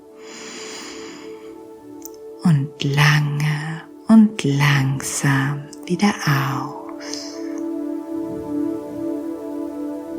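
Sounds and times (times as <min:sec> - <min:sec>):
faint steady tonal drone: 0:00.0 - 0:10.1
deep breath in: 0:00.2 - 0:01.7
speech: 0:02.5 - 0:07.2.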